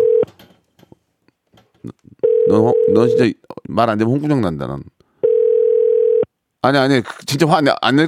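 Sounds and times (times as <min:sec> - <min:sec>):
outgoing phone call ringback tone: 0:00.0 - 0:00.3, 0:02.2 - 0:03.2, 0:05.2 - 0:06.3
speech: 0:01.8 - 0:05.0, 0:06.6 - 0:08.0.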